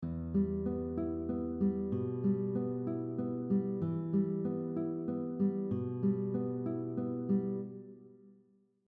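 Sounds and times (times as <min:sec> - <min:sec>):
fingerpicked guitar with moving bass notes on strings 6, 5 and 4: 0:00.0 - 0:08.1.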